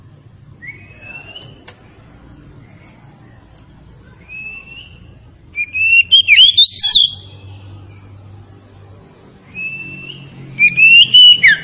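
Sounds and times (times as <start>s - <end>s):
Oriental magpie-robin Tretes variety in full song: 0.6s - 1.7s, 4.1s - 8.1s, 9.5s - 11.6s.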